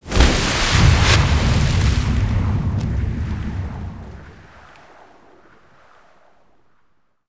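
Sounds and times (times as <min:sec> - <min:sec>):
water entry splash: 0:00.0 - 0:04.4.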